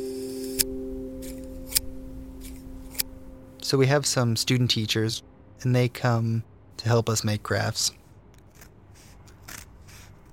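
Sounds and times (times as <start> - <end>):
speech: 3.7 - 8.0
real scissors cutting into thick cardboard: 8.4 - 10.3.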